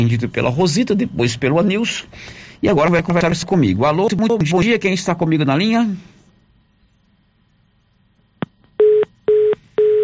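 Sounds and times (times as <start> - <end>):
speech: 0.0 - 6.2
telephone busy signal after a dropped call: 8.8 - 10.0.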